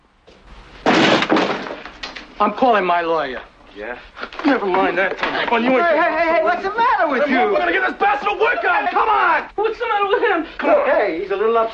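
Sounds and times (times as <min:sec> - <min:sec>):
apartment door being kicked open by a police officer: 0:00.8 - 0:02.3
speech: 0:02.4 - 0:11.7.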